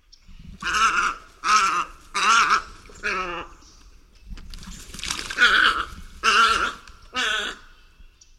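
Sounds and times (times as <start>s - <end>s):
Tricolored heron calling with raspy, grating squawks: 0.6s - 3.6s, 5.4s - 7.7s.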